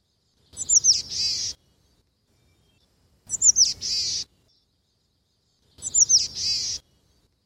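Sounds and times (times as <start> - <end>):
Boreal chickadee high scratchy calls: 0.5 - 1.6, 3.3 - 4.3, 5.8 - 6.8.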